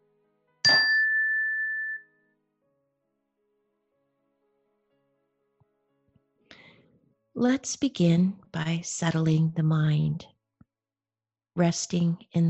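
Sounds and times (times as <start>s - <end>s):
meditation chime ringing: 0.7s - 2.1s
speech: 7.4s - 10.4s, 11.6s - 12.4s.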